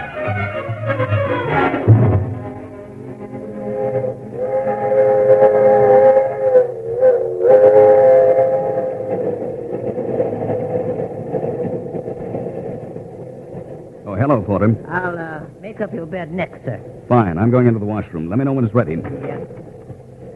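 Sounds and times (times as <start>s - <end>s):
train whistle blast: 0.0s - 10.0s
train cars rumbling into a station: 0.0s - 20.3s
speech: 16.1s - 19.6s.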